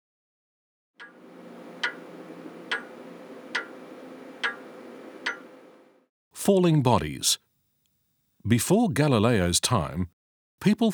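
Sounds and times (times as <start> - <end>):
pendulum clock ticking: 1.0 - 5.9
low constant hum: 1.1 - 6.0
speech: 6.4 - 7.5, 8.4 - 10.9.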